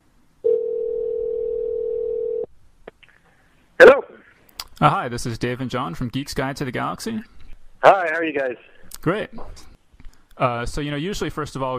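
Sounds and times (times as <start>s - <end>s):
telephone dial tone: 0.4s - 2.5s
speech: 4.8s - 9.7s, 10.4s - 11.7s.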